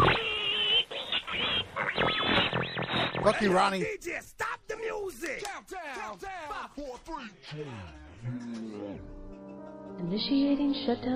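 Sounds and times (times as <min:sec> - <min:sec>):
pig oinking and squealing sound effect: 0:00.0 - 0:03.5
speech: 0:03.2 - 0:09.2, 0:10.0 - 0:11.1.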